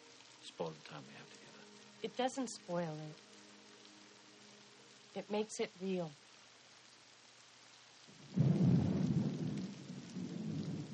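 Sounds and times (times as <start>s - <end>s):
steady rain hissing: 0.0s - 10.9s
speech: 0.6s - 3.3s, 5.2s - 6.2s
deep rolling rumble of thunder: 8.1s - 10.9s.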